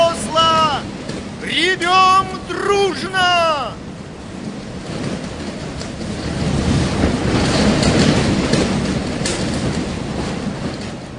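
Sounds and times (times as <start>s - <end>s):
howling wind: 0.0s - 11.1s
storm waves washing over a ship: 0.0s - 11.1s.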